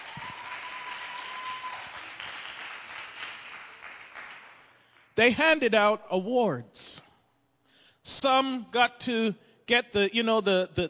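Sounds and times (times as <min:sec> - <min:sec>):
crowd applauding: 0:00.0 - 0:04.8
speech: 0:05.2 - 0:07.1, 0:08.0 - 0:10.8.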